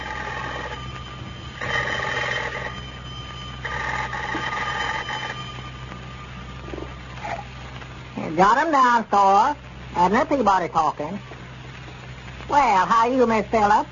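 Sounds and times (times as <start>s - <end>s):
old-fashioned telephone bell ringing: 0.0s - 7.4s
steady low hum: 0.0s - 13.9s
speech: 8.4s - 11.3s, 12.5s - 13.9s.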